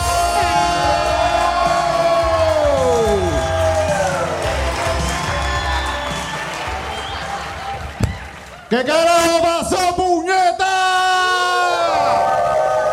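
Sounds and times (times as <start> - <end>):
crowd cheering with high whoops and shouts: 0.0 - 8.7, 10.9 - 12.9
loud crowd clapping: 0.0 - 10.0
speech: 8.7 - 9.9.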